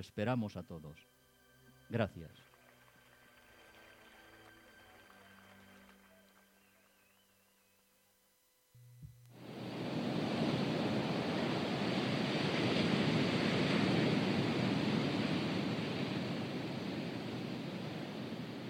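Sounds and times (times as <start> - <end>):
speech: 0.0 - 1.2, 1.9 - 2.5
sea waves washing ashore: 9.4 - 18.6.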